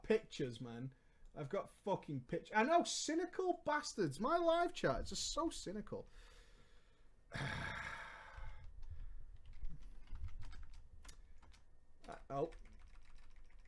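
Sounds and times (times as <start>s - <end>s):
speech: 0.1s - 6.3s, 7.3s - 7.8s, 12.3s - 12.6s
typing on a wireless computer keyboard: 8.3s - 13.6s.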